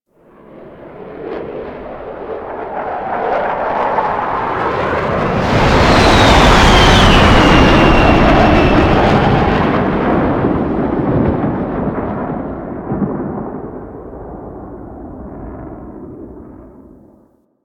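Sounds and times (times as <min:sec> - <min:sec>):
paratrooper plane flying over: 0:00.1 - 0:17.4.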